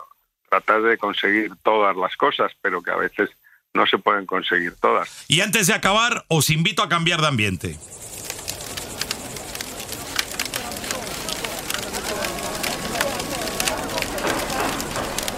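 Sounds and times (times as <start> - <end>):
speech: 0.5 - 8.1
bonfire crackling at desert night camp: 6.4 - 15.3
faint voices murmuring: 7.8 - 15.3.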